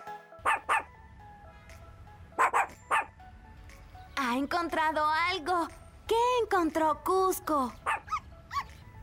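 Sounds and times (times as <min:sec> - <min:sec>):
puppy barking: 0:00.4 - 0:00.9, 0:02.4 - 0:03.2, 0:07.9 - 0:08.7
speech: 0:04.3 - 0:07.8.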